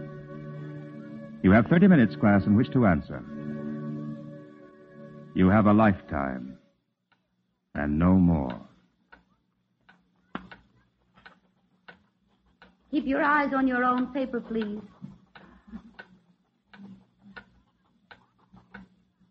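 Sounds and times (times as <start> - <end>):
speech: 1.4 - 3.3, 5.3 - 6.6, 7.8 - 8.7, 12.9 - 14.9
wall clock ticking in a classroom: 8.0 - 19.2.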